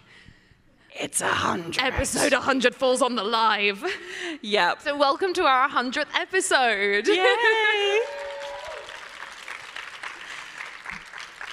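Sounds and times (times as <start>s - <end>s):
speech: 1.0s - 8.2s
live audience applause: 7.8s - 11.5s.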